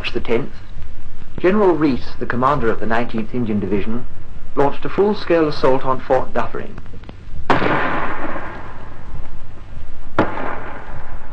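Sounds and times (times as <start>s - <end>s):
steady noise: 0.0s - 11.3s
speech: 0.1s - 0.6s, 1.4s - 6.9s
artillery shell bursting on a fort wall: 7.0s - 9.0s, 10.2s - 11.3s
5.5-inch artillery gun firing at point-blank range at a fort wall: 7.5s - 9.3s, 10.2s - 11.3s.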